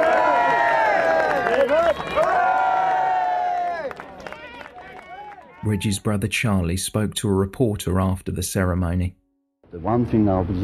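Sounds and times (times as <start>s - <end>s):
large crowd cheering and shouting: 0.0s - 6.0s
speech: 5.6s - 10.6s.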